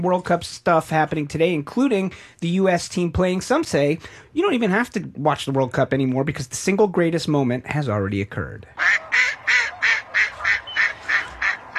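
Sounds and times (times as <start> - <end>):
speech: 0.0 - 9.0
duck quacking: 8.8 - 11.7.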